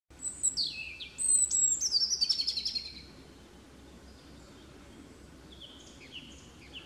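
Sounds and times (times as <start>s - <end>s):
European robin singing: 0.1s - 6.8s.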